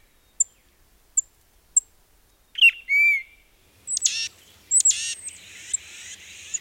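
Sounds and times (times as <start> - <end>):
Tufted titmouse calls: 3.9 - 6.5.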